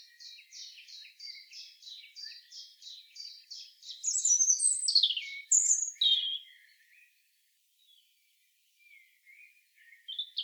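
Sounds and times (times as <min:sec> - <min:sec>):
European robin Erithacus rubecula singing: 0:00.0 - 0:06.8, 0:09.4 - 0:10.4.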